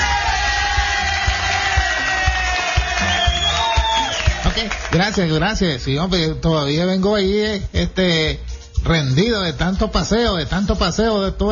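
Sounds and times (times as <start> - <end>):
regular low thumping beat: 0.0 - 4.5, 7.2 - 11.4
scattered cheers: 0.0 - 5.1
crowd applauding: 0.0 - 5.6
speech: 5.0 - 11.4.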